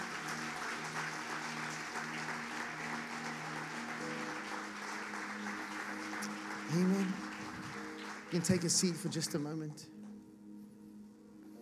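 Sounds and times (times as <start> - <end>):
large audience clapping: 0.0 - 9.8
speech: 6.7 - 7.2, 8.3 - 10.0.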